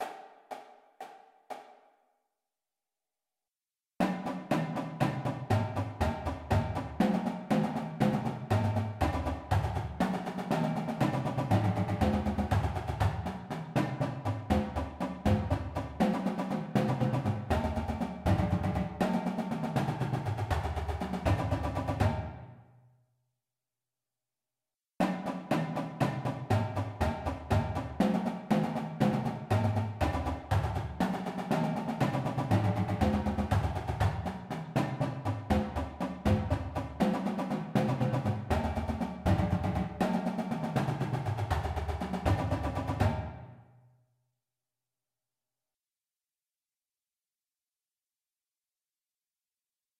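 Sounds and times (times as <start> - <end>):
intermediate drum paradiddles as drumline warmups: 0.0 - 1.8, 4.0 - 22.4, 25.0 - 43.5.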